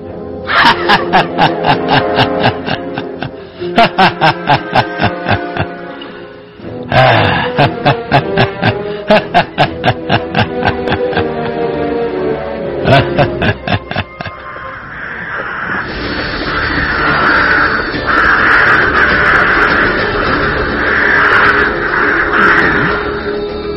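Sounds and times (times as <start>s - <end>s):
laughter: 0.5s - 5.8s, 6.9s - 11.6s, 12.8s - 14.6s
long rushing hiss: 14.4s - 23.7s
crows cawing at night: 16.5s - 23.2s.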